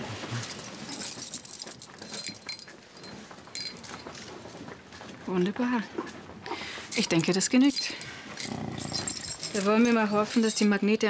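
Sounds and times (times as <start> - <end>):
metal keys jingling: 0.4 - 4.1, 6.9 - 11.0
speech: 5.3 - 6.2, 7.0 - 8.1, 9.6 - 11.0.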